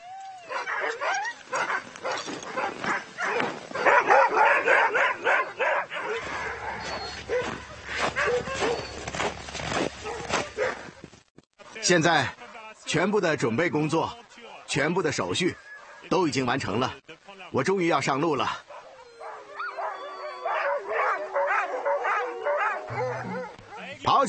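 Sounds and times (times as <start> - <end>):
excited sled dogs barking and yipping: 0.5 - 11.0, 18.6 - 24.2
sled dogs high whines: 5.3 - 9.2, 18.9 - 24.0
speech: 11.9 - 15.6, 16.2 - 18.6.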